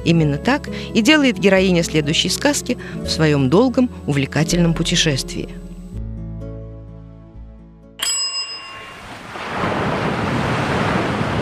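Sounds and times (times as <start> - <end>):
speech: 0.0 - 5.6
bright bell chime: 8.0 - 9.1
soft ocean waves lapping against the shore: 8.9 - 11.4.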